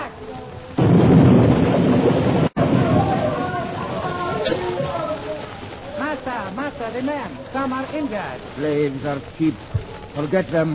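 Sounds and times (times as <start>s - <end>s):
plane petrol tank exploding: 0.8s - 6.0s
speech: 6.9s - 10.7s.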